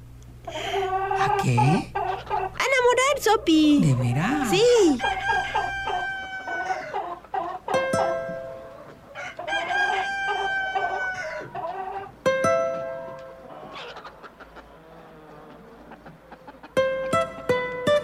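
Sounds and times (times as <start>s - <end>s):
hens clucking and cackling: 0.5s - 18.0s
speech: 1.4s - 2.0s, 2.6s - 5.8s
rooster crowing: 4.2s - 8.3s, 9.1s - 12.1s, 13.4s - 16.7s.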